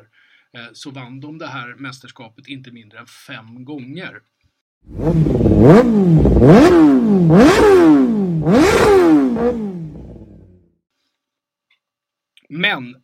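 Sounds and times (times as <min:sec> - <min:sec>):
speech: 0:00.1 - 0:09.7, 0:12.5 - 0:13.0
motorcycle engine revving: 0:04.8 - 0:10.8.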